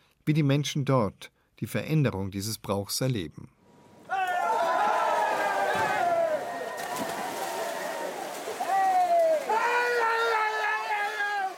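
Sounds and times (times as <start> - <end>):
speech: 0.3 - 3.6
large crowd cheering and shouting as people jump into a town stream to catch trout: 4.1 - 11.5.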